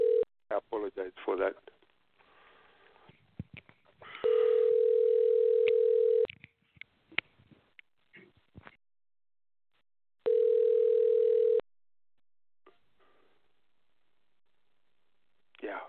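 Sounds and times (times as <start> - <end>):
phone ring tone on a call line: 0.0 - 0.2, 4.2 - 6.3, 10.2 - 11.6
speech: 0.5 - 1.8.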